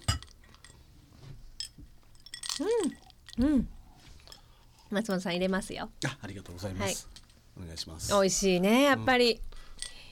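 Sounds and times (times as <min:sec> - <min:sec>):
glasses of mandarin orange juice clinking in a toast: 0:00.0 - 0:00.8, 0:01.6 - 0:03.4
speech: 0:02.6 - 0:03.8, 0:04.9 - 0:09.5.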